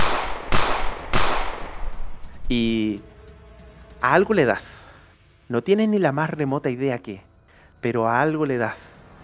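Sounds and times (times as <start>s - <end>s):
gunshots during a tabletop role-playing game: 0.0s - 2.3s
speech: 2.5s - 3.1s, 4.0s - 4.7s, 5.5s - 8.9s.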